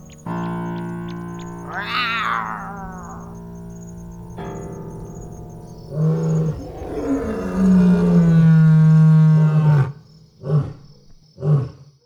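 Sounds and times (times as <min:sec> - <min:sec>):
lion roaring: 0:01.6 - 0:03.5, 0:05.9 - 0:11.8.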